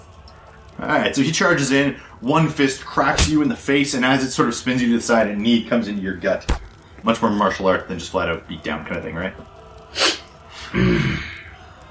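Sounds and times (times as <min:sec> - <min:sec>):
speech: 0:00.8 - 0:10.1, 0:10.7 - 0:11.3
sharp nasal sniff: 0:09.9 - 0:10.3
breathy vocal huff: 0:09.9 - 0:11.4.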